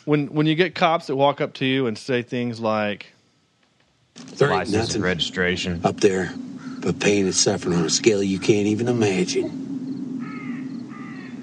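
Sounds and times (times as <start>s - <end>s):
speech: 0.0s - 3.2s, 4.2s - 9.7s
constant low hum: 0.0s - 11.4s
crow cawing: 6.4s - 6.9s, 10.2s - 11.4s.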